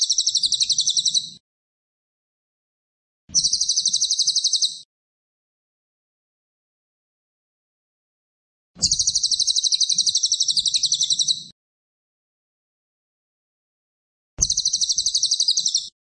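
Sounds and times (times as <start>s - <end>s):
cililin giving high rapid buzzy trill phrases: 0.0s - 1.4s, 3.3s - 4.8s, 8.8s - 11.5s, 14.4s - 15.9s.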